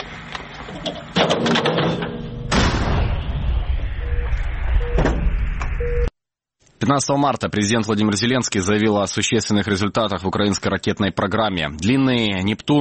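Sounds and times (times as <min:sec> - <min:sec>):
speech: 0:00.7 - 0:01.5, 0:06.9 - 0:12.8
sharp bang: 0:01.3 - 0:05.8
cannon firing with heavy boom: 0:02.1 - 0:05.8
low rumble: 0:02.1 - 0:06.2.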